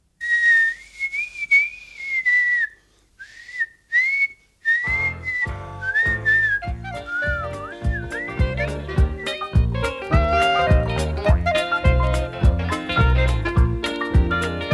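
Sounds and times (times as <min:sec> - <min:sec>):
children whistling unsteadily: 0:00.2 - 0:09.5
fuller lower musical backing: 0:04.8 - 0:14.7.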